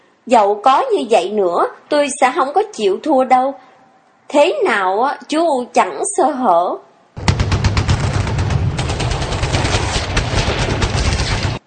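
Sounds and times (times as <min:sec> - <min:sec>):
speech: 0:00.2 - 0:03.6, 0:04.3 - 0:06.9
several gunshots fired nearby: 0:07.2 - 0:11.6.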